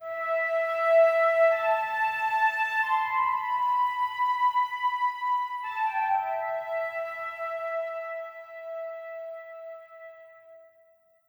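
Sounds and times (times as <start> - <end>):
flute film score music: 0.0 - 11.0.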